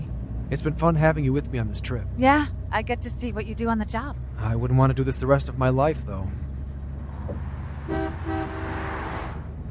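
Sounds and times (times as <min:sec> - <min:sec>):
low rumble of a moving vehicle: 0:00.0 - 0:09.6
road noise: 0:00.0 - 0:09.6
speech: 0:00.5 - 0:06.5
car horn honking: 0:07.8 - 0:09.1.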